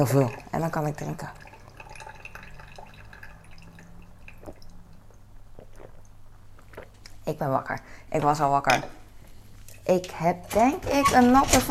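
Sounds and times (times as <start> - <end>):
speech: 0.0 - 1.4, 7.3 - 9.0, 9.8 - 11.6
cold water pouring and trickling into a cup of hot coffee: 0.0 - 7.0
low hum: 0.0 - 11.6.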